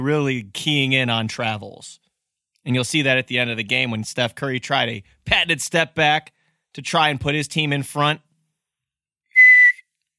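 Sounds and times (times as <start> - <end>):
speech: 0.0 - 2.0, 2.6 - 8.3
referee's whistle blast: 9.4 - 9.8.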